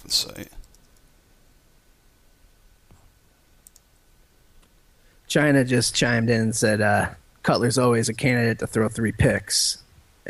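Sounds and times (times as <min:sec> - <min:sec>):
low steady hiss: 0:00.0 - 0:10.2
faint clicks on a computer: 0:00.6 - 0:01.1, 0:03.6 - 0:03.9
speech: 0:05.3 - 0:10.2.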